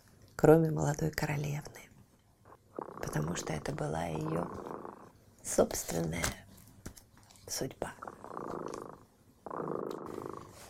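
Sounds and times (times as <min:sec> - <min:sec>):
speech: 0:00.4 - 0:01.8, 0:03.1 - 0:04.7, 0:05.4 - 0:06.4, 0:07.5 - 0:08.2
cat purring: 0:02.4 - 0:05.9, 0:07.8 - 0:10.6.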